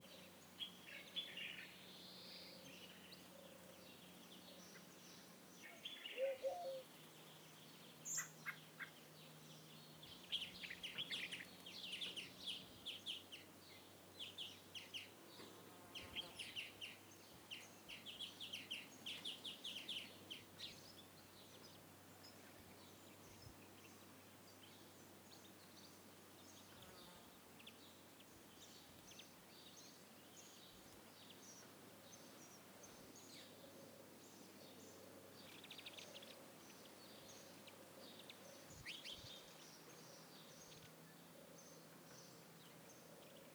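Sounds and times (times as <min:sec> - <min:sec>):
birds at a villa in Essaouira Morocco: 0:00.0 - 0:43.5.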